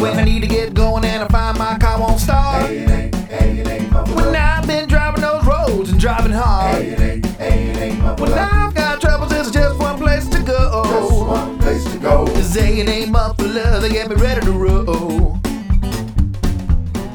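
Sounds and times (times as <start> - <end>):
muffler jingling: 0.1 - 16.9.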